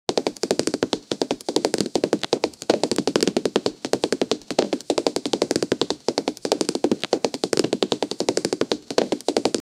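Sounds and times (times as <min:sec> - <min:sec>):
fast running footsteps: 0:00.1 - 0:09.6.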